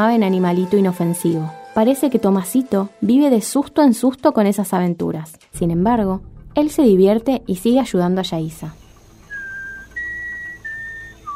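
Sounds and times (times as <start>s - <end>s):
speech: 0.0s - 8.8s
person whistling clear sustained notes: 9.3s - 11.3s.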